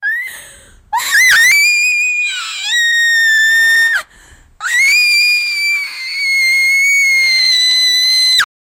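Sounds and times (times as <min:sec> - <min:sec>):
teenage girl screaming: 0:01.0 - 0:04.0, 0:04.6 - 0:08.5.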